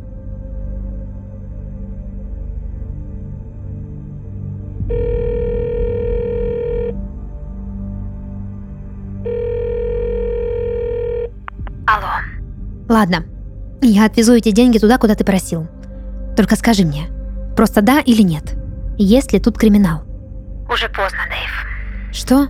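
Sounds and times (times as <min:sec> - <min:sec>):
telephone line tones after a call is hung up: 0:04.9 - 0:07.0, 0:09.3 - 0:11.3
low constant hum: 0:11.4 - 0:22.4
speech: 0:12.9 - 0:15.8, 0:16.4 - 0:20.1, 0:20.7 - 0:22.4.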